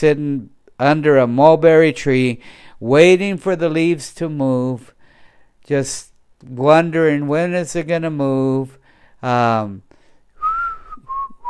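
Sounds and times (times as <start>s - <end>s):
speech: 0.0s - 5.0s, 5.6s - 9.9s
person whistling idly: 10.4s - 11.4s.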